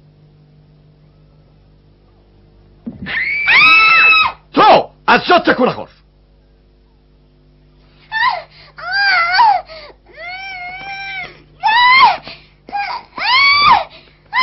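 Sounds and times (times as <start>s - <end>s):
young girl crying and screaming: 3.0s - 4.4s, 8.1s - 14.4s
speech: 5.1s - 6.0s.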